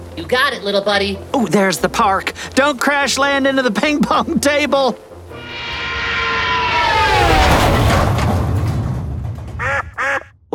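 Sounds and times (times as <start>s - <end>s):
speech: 0.2s - 5.1s
rumbling noise: 6.5s - 10.1s
duck quacking: 9.6s - 10.5s.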